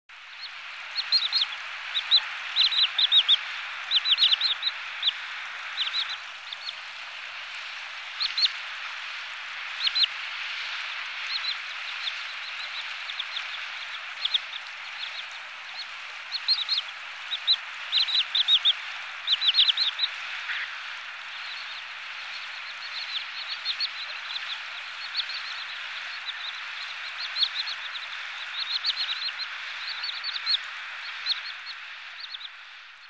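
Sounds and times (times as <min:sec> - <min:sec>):
Tringa glareola calling by the sea in Sakhalin: 0:00.2 - 0:33.0.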